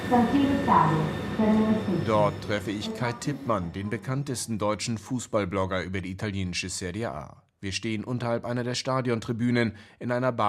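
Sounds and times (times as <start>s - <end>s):
indistinct voices murmuring: 0.0s - 4.3s
subway train rumbling: 0.0s - 4.6s
speech: 0.1s - 10.4s.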